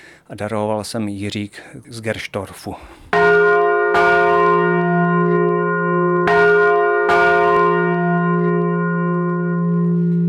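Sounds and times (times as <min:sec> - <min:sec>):
speech: 0:00.3 - 0:03.6
large church bell ringing in bell tower: 0:03.2 - 0:10.2.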